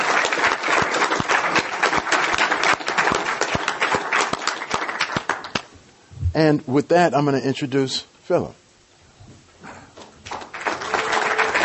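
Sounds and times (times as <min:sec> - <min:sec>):
audience applauding a speaker: 0:00.0 - 0:05.7, 0:10.2 - 0:11.6
speech: 0:06.4 - 0:08.6.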